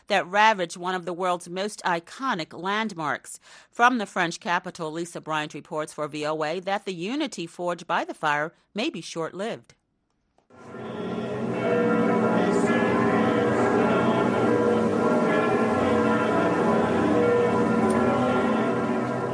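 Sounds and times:
speech: 0.1 - 9.8
church bells pealing in France: 10.6 - 19.3.

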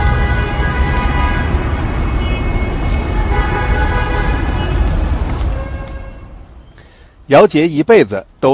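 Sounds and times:
car horns: 0.0 - 6.4
dense city road traffic in Beijing: 0.0 - 8.5
speech: 7.3 - 8.5.

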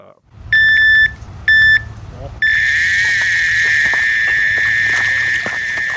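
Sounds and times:
fishing bite alarm beeping: 0.6 - 5.9.

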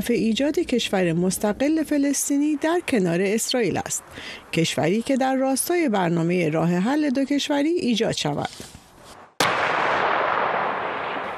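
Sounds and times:
speech: 0.0 - 8.7
Israeli tank cannon firing at a target at the Gaza border: 9.4 - 11.3.

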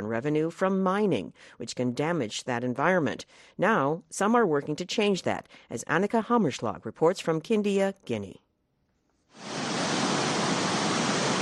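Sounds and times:
speech: 0.1 - 8.4, 9.3 - 9.6
water gushing over rocks at a waterfall: 9.4 - 11.3.

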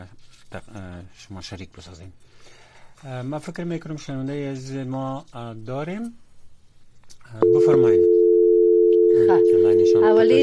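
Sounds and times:
speech: 0.5 - 6.2, 7.3 - 8.2, 9.2 - 10.4
telephone busy tone after a call has been cut off: 7.4 - 10.4.

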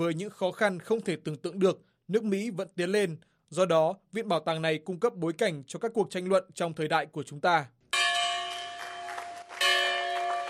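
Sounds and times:
speech: 0.0 - 7.8
church bell ringing: 7.9 - 10.4.

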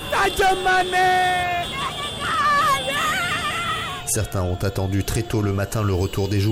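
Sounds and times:
loud sustained cries of joy: 0.0 - 4.4
crowd of football supporters cheering and shouting in the streets: 0.0 - 5.2
car horns: 0.0 - 6.4
constant hubbub: 0.0 - 6.4
parade of motorcycle taxis: 0.0 - 6.4
speech: 0.2 - 1.8, 4.1 - 6.4.

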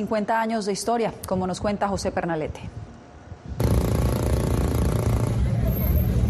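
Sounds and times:
speech: 0.0 - 2.9
crowd-like noise: 0.0 - 6.2
modified car engines roaring with a throaty tone: 3.6 - 6.2.

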